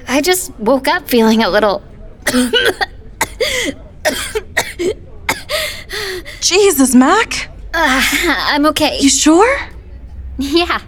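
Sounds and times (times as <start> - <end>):
speech: 0.2 - 3.8, 6.4 - 9.7, 10.4 - 10.8
person coughing: 2.2 - 5.8.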